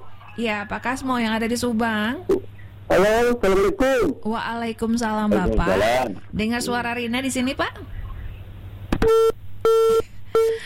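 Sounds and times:
speech: 0:00.4 - 0:08.0
telephone busy signal on a failed call: 0:09.0 - 0:10.6.

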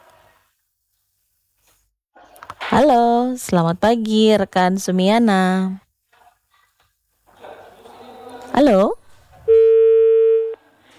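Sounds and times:
speech: 0:02.7 - 0:05.8, 0:08.6 - 0:09.0
telephone line tone after a call cuts off: 0:09.5 - 0:10.6.

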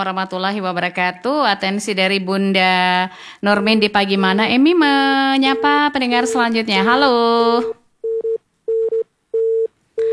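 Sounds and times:
speech: 0:00.0 - 0:07.8
busy tone beeps of a phone line cut off: 0:04.4 - 0:10.1.

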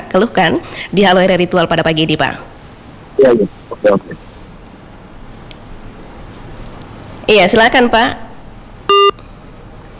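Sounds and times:
faint hiss: 0:00.0 - 0:09.9
speech: 0:00.1 - 0:02.5, 0:03.2 - 0:04.3, 0:07.3 - 0:08.2
telephone line beeping after a call is cut off: 0:08.9 - 0:09.2.

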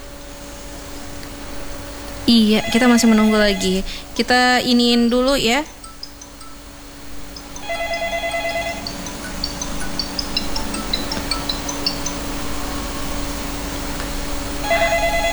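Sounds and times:
speech: 0:02.3 - 0:05.8
telephone ringing with an incoming call: 0:02.3 - 0:13.7, 0:14.6 - 0:15.3
faint clinking noise: 0:05.1 - 0:13.5.

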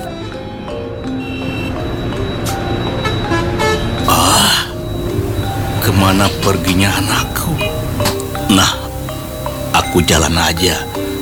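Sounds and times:
heavy dump truck carrying building material rumbling by at night: 0:00.0 - 0:11.2
harsh hiss of heavy dump truck: 0:04.0 - 0:11.2
speech: 0:05.9 - 0:07.6, 0:08.5 - 0:08.8, 0:09.9 - 0:11.0.

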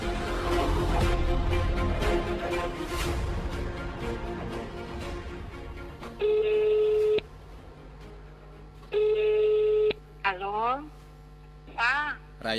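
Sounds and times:
busy noisy sound: 0:00.0 - 0:12.5
telephone ringback tone through an earpiece on an outgoing call: 0:06.2 - 0:07.2, 0:08.9 - 0:10.0.

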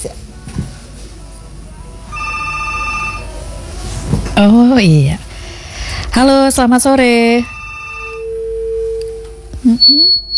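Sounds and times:
low steady hum: 0:00.0 - 0:10.3
telephone ringing with an incoming call: 0:02.1 - 0:03.3, 0:07.2 - 0:09.0
speech: 0:04.4 - 0:05.2, 0:06.2 - 0:07.5.

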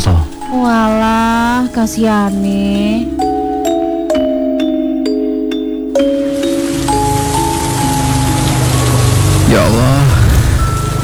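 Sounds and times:
ringing metallic tones: 0:00.0 - 0:11.0
speech: 0:00.5 - 0:03.2
fairly heavy drizzle falling: 0:06.0 - 0:11.0.

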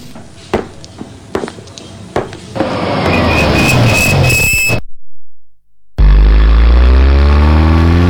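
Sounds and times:
school bus engine revving and pulling away: 0:00.0 - 0:04.8, 0:06.0 - 0:08.0
deep loud engine rumble: 0:02.2 - 0:08.0.

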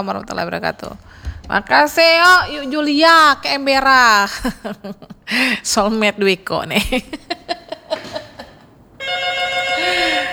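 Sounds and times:
speech: 0:00.0 - 0:08.2
telephone ringing for an incoming call: 0:09.0 - 0:10.3.

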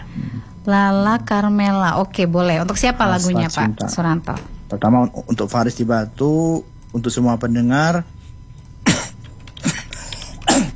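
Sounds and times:
speech: 0:00.7 - 0:08.2
harsh coughs: 0:08.8 - 0:10.7.

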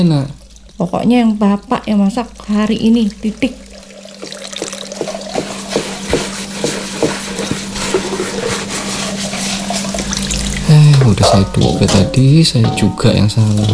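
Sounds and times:
speech: 0:00.0 - 0:03.6, 0:11.1 - 0:13.7
running tap water: 0:00.0 - 0:13.7
dishes clinking and knocking together: 0:03.6 - 0:13.7.

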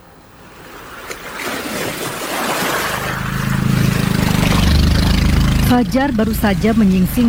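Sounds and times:
waves lapping at a fishing boat dock near moored boats: 0:00.0 - 0:07.2
low engine rumble: 0:02.7 - 0:07.2
speech: 0:05.7 - 0:07.2.

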